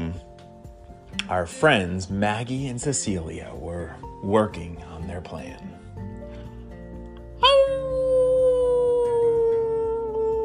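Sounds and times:
speech: 0:01.3 - 0:05.8
puppy howling: 0:07.4 - 0:10.4.

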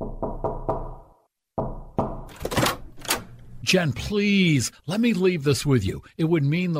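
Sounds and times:
knocking on a door: 0:00.0 - 0:01.0, 0:01.6 - 0:02.3
speech: 0:03.7 - 0:06.7.

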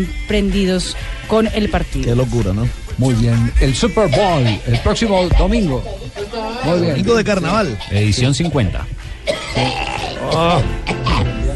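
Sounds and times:
speech: 0:00.0 - 0:10.8
throaty cough caused by smoke from the hills: 0:09.2 - 0:11.5.

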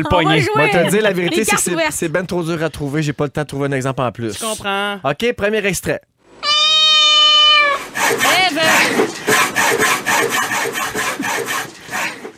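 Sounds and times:
laughter: 0:00.0 - 0:01.6
speech: 0:00.0 - 0:06.5
cat meowing: 0:06.4 - 0:07.8
saw cutting through wood with back-and-forth rasping strokes: 0:06.4 - 0:12.3.

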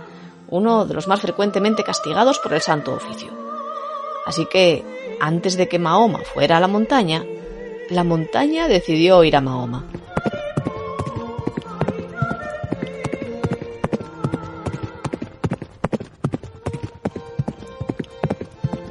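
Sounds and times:
speech: 0:00.5 - 0:03.5, 0:04.2 - 0:10.0
horse hooves clip-clopping: 0:08.6 - 0:18.8.

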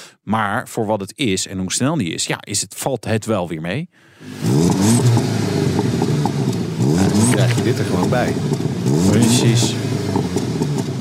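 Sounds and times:
speech: 0:00.2 - 0:05.3, 0:07.1 - 0:10.5
Volkswagen Golf engine revving and idling: 0:04.2 - 0:10.9.

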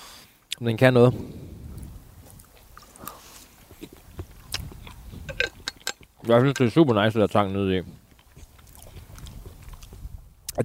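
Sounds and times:
speech: 0:00.6 - 0:01.4, 0:06.3 - 0:08.0
chewing a whole cracker: 0:02.3 - 0:06.3, 0:07.9 - 0:10.6.

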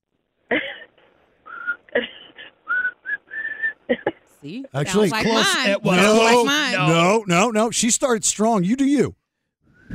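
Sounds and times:
person whistling a rock song melody: 0:02.7 - 0:03.8
speech: 0:04.4 - 0:09.2.

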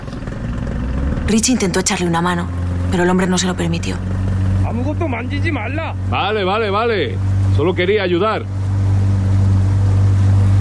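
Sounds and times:
boat engine droning as the boat departs across the sea from North Korea toward Japan: 0:00.0 - 0:10.5
speech: 0:01.3 - 0:04.1, 0:04.7 - 0:08.6.

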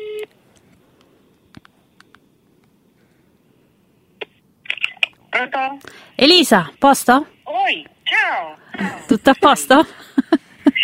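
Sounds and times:
phone clicks while dialling: 0:04.2 - 0:05.2
speech: 0:05.4 - 0:10.1.

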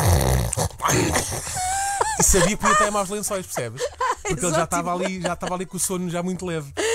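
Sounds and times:
person imitating a loud rough snore with raspy grunting: 0:00.0 - 0:01.7
person clearing throat with a throaty cough: 0:00.8 - 0:02.6
speech: 0:00.9 - 0:01.6, 0:02.2 - 0:06.9
laughter: 0:00.9 - 0:06.2.

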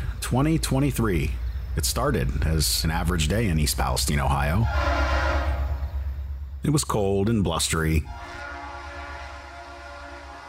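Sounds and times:
train rolling through East Palestine Ohio on a cold blustery day: 0:00.0 - 0:10.4
speech: 0:00.3 - 0:05.1, 0:06.6 - 0:08.4
sustained droning horn-like tone: 0:04.6 - 0:06.0, 0:08.1 - 0:10.4.

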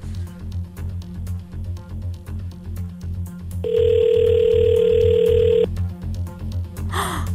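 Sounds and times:
music: 0:00.0 - 0:07.3
telephone ringback tone on an outgoing call: 0:03.6 - 0:05.7.

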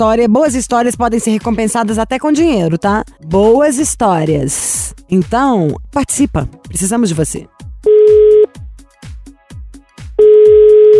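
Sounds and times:
speech: 0:00.0 - 0:07.6
phone line ringback tone: 0:07.9 - 0:08.5, 0:10.2 - 0:10.9.

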